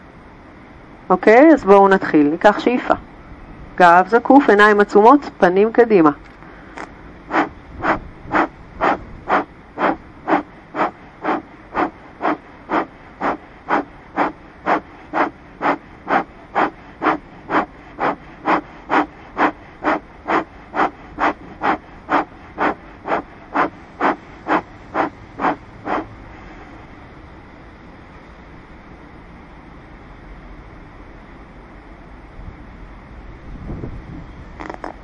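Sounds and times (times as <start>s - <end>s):
speech: 1.1s - 3.0s, 3.8s - 6.9s
short forceful exhalations through the nose or mouth in a breathing exercise: 6.4s - 26.7s.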